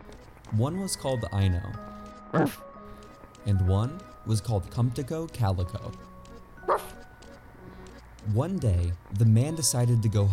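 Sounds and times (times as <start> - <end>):
speech: 0.5 - 2.7, 3.4 - 7.0, 8.2 - 10.3
short sharp dog bark: 2.4 - 2.6, 6.7 - 7.0.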